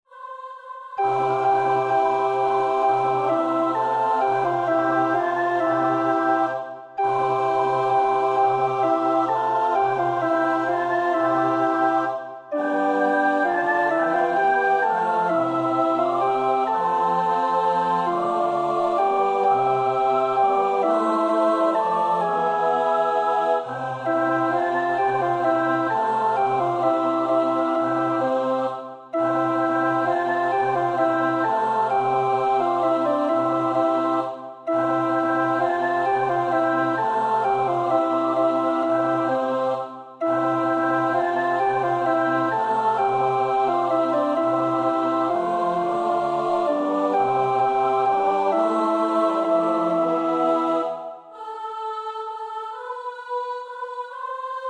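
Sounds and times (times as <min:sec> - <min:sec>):
christmas carol, alternate version of fourth verse: 0:00.1 - 0:54.6.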